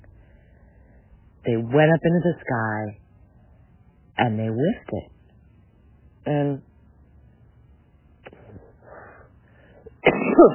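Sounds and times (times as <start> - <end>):
speech: 1.5 - 3.0, 4.2 - 5.1, 6.2 - 6.7
woman coughing: 10.0 - 10.5.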